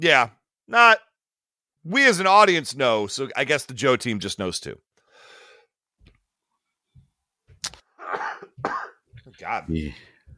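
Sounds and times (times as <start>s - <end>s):
speech: 0.0s - 1.1s, 1.8s - 4.9s, 9.4s - 10.1s
harsh coughing fit with raspy inhale: 8.0s - 9.1s.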